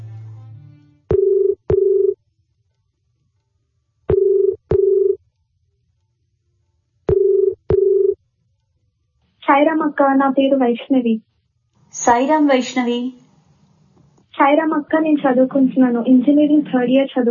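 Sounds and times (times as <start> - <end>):
telephone ringback tone for a phone-in call: 1.1 - 2.2, 4.1 - 5.2, 7.1 - 8.2
speech: 9.5 - 11.3, 11.9 - 13.2, 14.4 - 17.2.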